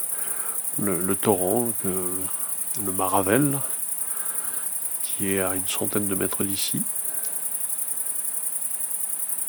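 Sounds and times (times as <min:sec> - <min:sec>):
great green bush-crickets stridulating: 0:00.0 - 0:09.4
speech: 0:00.8 - 0:03.8, 0:05.2 - 0:07.0.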